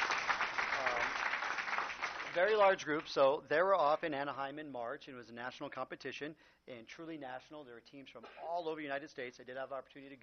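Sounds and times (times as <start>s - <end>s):
audience applause for a hip-hop dance drill team: 0.0s - 2.7s
speech: 2.4s - 10.2s.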